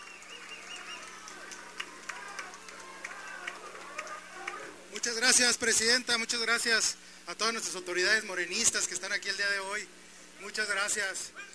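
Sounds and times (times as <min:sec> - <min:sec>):
faint shouts or whistles from the crowd: 0:00.0 - 0:04.9
large audience applause: 0:00.0 - 0:04.9
speech: 0:05.2 - 0:11.5.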